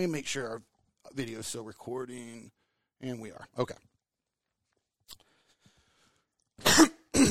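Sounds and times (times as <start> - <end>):
speech: 0.0 - 3.9
harsh raspy coughs: 6.6 - 7.2.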